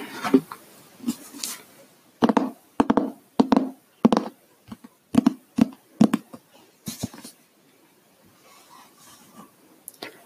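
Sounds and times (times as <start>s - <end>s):
hardcover book rustling and scraping as it is moved: 0.0s - 1.7s, 6.9s - 7.4s, 8.4s - 9.5s
sharp taps and knocks on a hardcover book: 2.2s - 6.3s.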